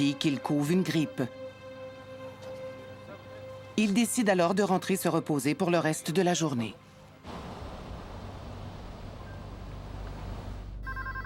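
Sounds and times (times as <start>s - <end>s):
speech: 0.0s - 1.4s, 3.8s - 7.4s
steady rushing wind-like noise: 7.3s - 10.6s
telephone ringing with a bright warbling electronic tone: 10.8s - 11.2s.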